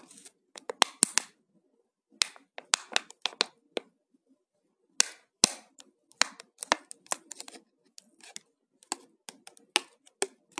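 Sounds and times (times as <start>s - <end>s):
plastic being handled with clicks and crinkly snaps: 0.0s - 1.3s, 2.2s - 3.9s, 5.0s - 10.5s.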